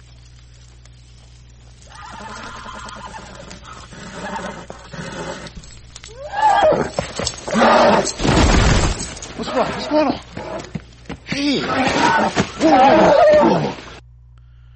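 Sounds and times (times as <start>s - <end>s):
horse whinnying in distress: 1.9s - 8.2s, 11.4s - 14.0s
horse thrashing: 7.2s - 13.0s
speech: 9.6s - 10.2s.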